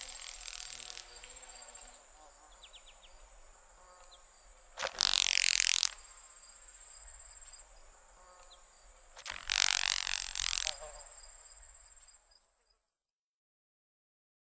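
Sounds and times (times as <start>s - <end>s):
Boll's and Carolina grasshoppers making dry crackling rattles: 0.0s - 2.0s, 4.8s - 6.0s, 9.1s - 11.0s
steady hiss: 0.0s - 8.1s, 8.8s - 12.2s
faint high buzzing: 0.0s - 12.4s.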